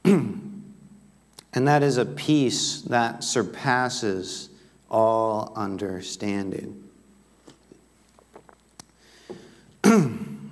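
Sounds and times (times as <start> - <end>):
person clearing throat: 0.0 - 0.6, 9.8 - 10.5
speech: 1.5 - 6.8, 10.0 - 10.2.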